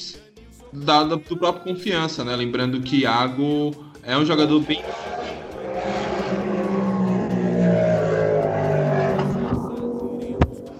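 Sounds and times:
speech: 0:00.7 - 0:05.3
motorcycle passing by: 0:04.6 - 0:10.7.

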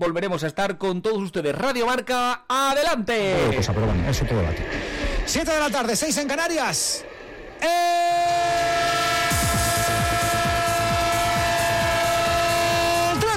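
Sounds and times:
speech: 0:00.0 - 0:08.5
train horn blaring: 0:08.4 - 0:13.2.

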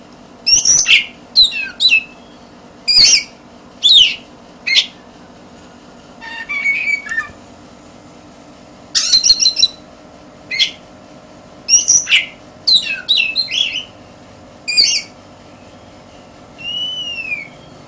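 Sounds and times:
constant background hum: 0:00.0 - 0:17.8
Oriental magpie-robin song: 0:00.4 - 0:05.0, 0:06.2 - 0:07.4, 0:09.0 - 0:09.8, 0:10.5 - 0:10.8, 0:11.7 - 0:14.0, 0:14.7 - 0:17.8.

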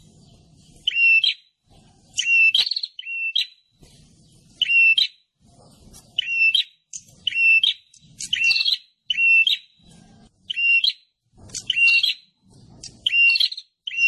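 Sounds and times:
prinia giving sharp buzzy chirping calls: 0:00.0 - 0:14.0.

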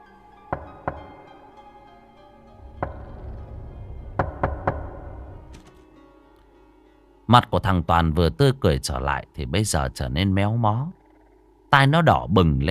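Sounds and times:
sharp knocks on a door: 0:00.5 - 0:01.3, 0:02.6 - 0:05.5
speech: 0:07.3 - 0:11.0, 0:11.7 - 0:12.7.

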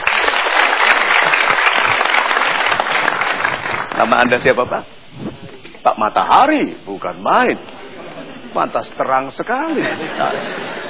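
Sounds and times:
audience applause in a talk-show studio: 0:00.0 - 0:04.2
speech: 0:04.0 - 0:07.8, 0:08.5 - 0:10.8
laughter: 0:07.5 - 0:09.0, 0:09.6 - 0:10.8.

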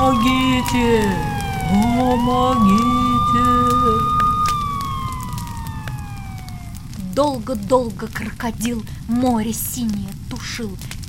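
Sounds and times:
fire engine siren wailing: 0:00.0 - 0:07.3
dense rushing crackling background: 0:00.0 - 0:11.0
speech: 0:00.7 - 0:04.2, 0:07.2 - 0:11.0.

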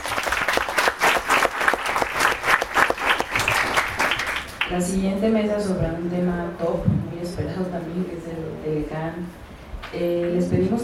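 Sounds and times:
audience applauding panel participants at an international law seminar: 0:00.0 - 0:04.8
speech: 0:04.7 - 0:10.8.

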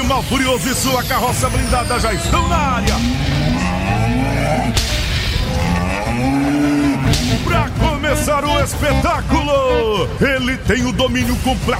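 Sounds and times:
speech: 0:00.1 - 0:11.7
buffalo lowing at a live show: 0:02.9 - 0:07.4.

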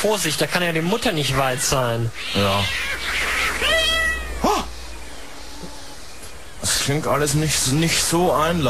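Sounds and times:
speech: 0:00.0 - 0:03.7, 0:06.9 - 0:08.6
soft hiss: 0:00.1 - 0:08.6
small kitten meowing: 0:02.2 - 0:04.7.

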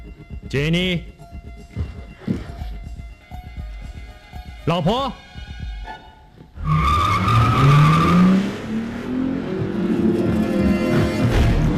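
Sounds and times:
speech: 0:00.5 - 0:01.1, 0:04.7 - 0:05.3
car tires screeching as a car pulls away hard: 0:05.9 - 0:11.7
car engine rising: 0:06.6 - 0:11.7.

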